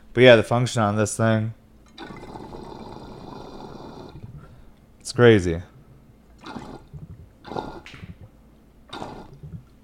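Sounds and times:
speech: 0.2s - 2.2s, 5.1s - 5.7s
water bubbling and gurgling through a glass pipe: 6.4s - 8.3s, 8.9s - 9.7s.

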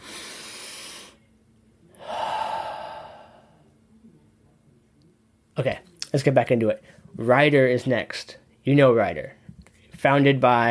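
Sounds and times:
deep breath with a faint hum: 0.0s - 1.2s, 2.0s - 3.7s
speech: 5.6s - 9.4s, 10.0s - 10.6s.

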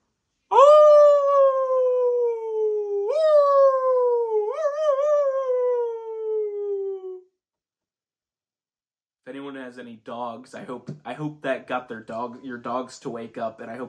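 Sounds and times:
voice imitating a wolf howling: 0.5s - 7.3s
speech: 9.8s - 13.8s.

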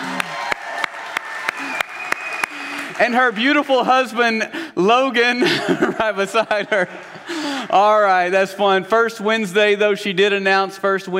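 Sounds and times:
person clapping in a regular beat: 0.0s - 3.0s
crowd applauding: 0.0s - 4.3s, 6.0s - 8.2s
speech: 3.0s - 11.1s
laughter: 5.2s - 7.9s.

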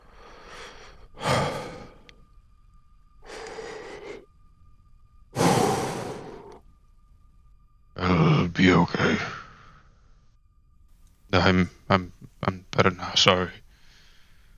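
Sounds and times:
deep breaths taken to calm down after being upset: 0.0s - 2.4s, 3.1s - 4.6s, 5.3s - 6.6s, 9.2s - 10.4s, 13.6s - 14.5s
faint steady hum: 0.0s - 14.5s
speech: 8.8s - 9.4s, 11.4s - 13.6s.

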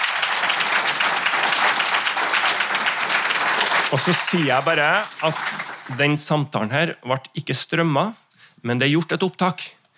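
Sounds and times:
room full of people applauding: 0.0s - 6.3s
speech: 3.9s - 9.8s.

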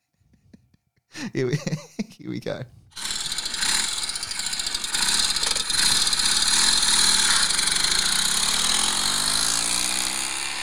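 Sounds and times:
laughter: 0.4s - 2.6s
speech: 1.2s - 2.8s
Norton 850 Commando vertical twin motorcycle engine rumbling: 3.0s - 10.6s.

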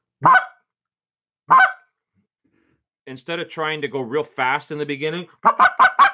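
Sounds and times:
clucks from a turkey call: 0.2s - 0.6s, 1.5s - 1.9s, 5.4s - 6.1s
speech: 3.1s - 5.9s.

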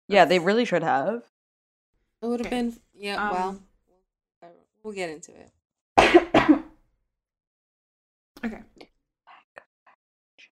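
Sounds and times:
speech: 0.1s - 1.3s, 2.2s - 3.7s, 4.4s - 6.3s, 8.4s - 8.8s
harsh wet phlegmy coughs: 6.0s - 6.8s.

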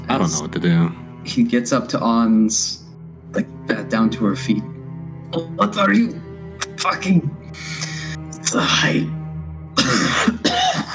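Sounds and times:
speech: 0.1s - 4.7s, 5.3s - 6.2s, 6.8s - 7.8s, 8.5s - 9.2s
person imitating a character's harsh raspy coughs: 9.8s - 10.9s.

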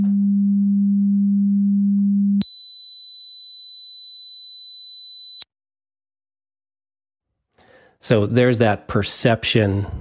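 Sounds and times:
low sine test tone: 0.0s - 3.9s
high piercing sine test tone: 0.0s - 5.5s
speech: 8.0s - 9.9s.

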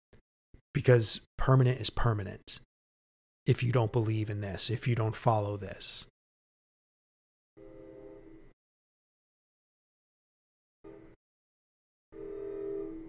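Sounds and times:
speech: 0.8s - 2.7s, 3.4s - 6.1s
train horn blasts: 12.2s - 13.0s.

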